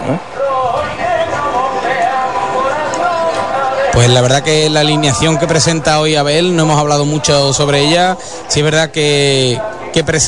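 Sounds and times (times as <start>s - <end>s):
football club anthem sung in a stadium: 0.0s - 10.2s
stadium crowd noise: 0.0s - 10.2s
speech: 0.1s - 0.3s, 4.0s - 10.2s.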